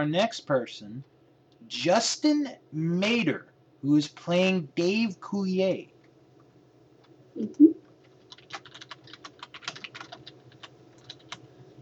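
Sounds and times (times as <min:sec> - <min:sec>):
speech: 0:00.0 - 0:05.9, 0:07.4 - 0:07.6
low steady hum: 0:00.0 - 0:11.8
typing on a computer keyboard: 0:08.0 - 0:11.5.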